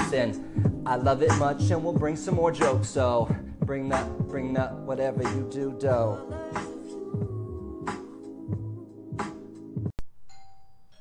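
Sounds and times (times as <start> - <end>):
speech: 0.1 - 6.6
doorbell chiming a ding-dong melody: 10.3 - 10.9.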